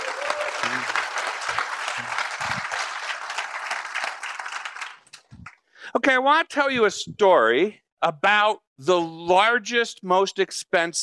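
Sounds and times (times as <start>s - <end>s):
audience at a tech meetup clapping: 0.0s - 5.6s
speech: 6.0s - 11.0s.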